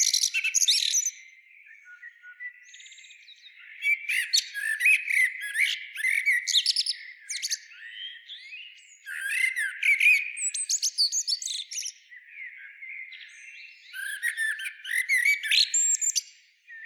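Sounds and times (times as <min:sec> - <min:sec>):
Eurasian blackbird Turdus merula squeaks clicks and slurred whistles: 0:00.0 - 0:01.2, 0:03.6 - 0:11.9, 0:13.9 - 0:16.8.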